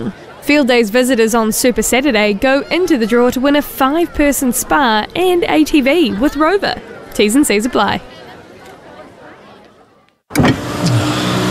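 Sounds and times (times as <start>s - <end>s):
speech: 0.0s - 8.1s
car accelerating while overtaking: 10.4s - 11.4s.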